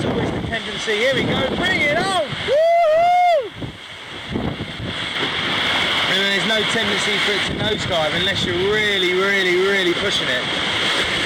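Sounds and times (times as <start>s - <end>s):
water rushing past the hull of a sailboat surging downwind: 0.0s - 11.2s
wind buffeting the microphone on a sailboat: 0.0s - 11.2s
speech: 0.5s - 2.7s, 6.6s - 10.7s
person whooping: 2.4s - 3.6s.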